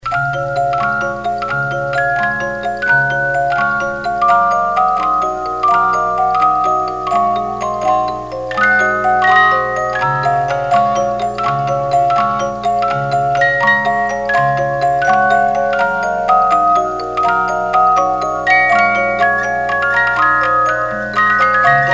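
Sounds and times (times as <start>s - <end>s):
50-note music box melody: 0.0s - 21.9s.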